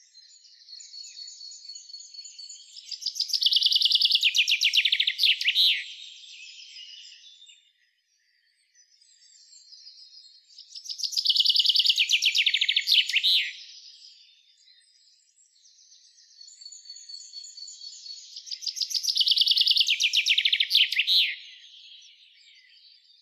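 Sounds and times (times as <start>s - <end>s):
common chaffinch Fringilla coelebs song of descending trills: 0.3s - 7.5s, 8.9s - 13.9s, 17.9s - 23.2s.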